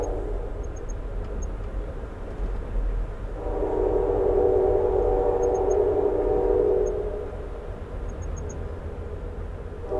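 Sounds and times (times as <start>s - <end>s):
low rumble of rolling passenger train wheels: 0.0s - 9.9s
passenger train horn blast at night in American countryside: 3.4s - 7.4s, 9.8s - 9.9s.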